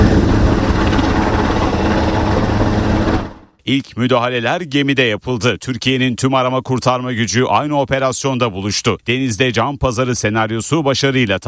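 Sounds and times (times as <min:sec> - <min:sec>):
coast guard helicopter during a sea rescue exercise: 0:00.0 - 0:03.6
speech: 0:03.7 - 0:11.4.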